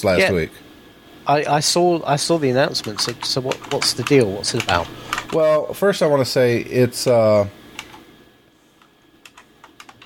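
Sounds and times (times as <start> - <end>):
speech: 0.0 - 0.6, 1.3 - 7.6
computer keyboard clicking: 2.8 - 5.6, 7.8 - 8.0, 8.8 - 10.0.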